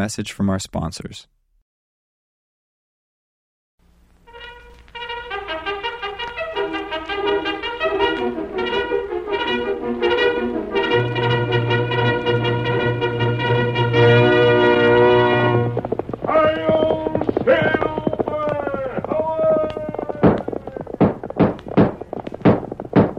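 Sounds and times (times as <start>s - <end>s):
speech: 0.0s - 1.4s
galloping horse hooves: 4.3s - 23.1s
sustained tone: 9.4s - 23.1s.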